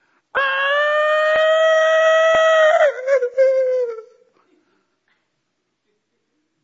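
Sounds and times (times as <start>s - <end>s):
person imitating a crow call: 0.4s - 4.3s.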